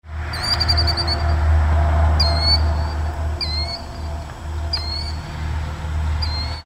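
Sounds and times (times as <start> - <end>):
killdeer calling: 0.3 - 1.4, 2.2 - 5.3, 6.2 - 6.6.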